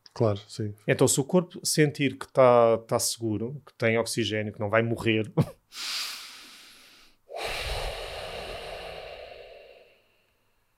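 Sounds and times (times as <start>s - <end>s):
speech: 0.2s - 6.0s
slow breathing through the nose: 5.7s - 10.6s.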